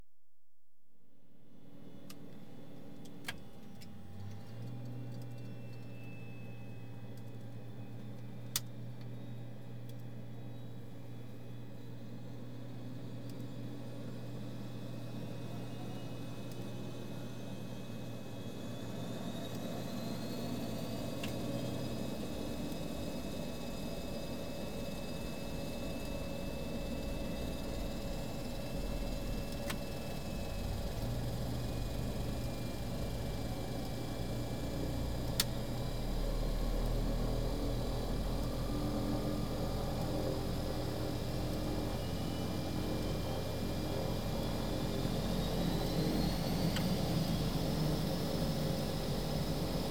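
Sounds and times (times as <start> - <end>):
aircraft engines starting up and running: 1.7 - 49.8
aircraft taxiing: 18.0 - 49.8.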